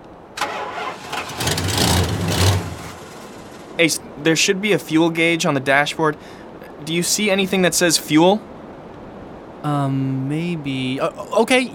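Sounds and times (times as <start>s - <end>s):
car engine cranking as the ignition key is turned: 0.4s - 3.8s
speech: 3.8s - 8.6s, 9.6s - 11.7s.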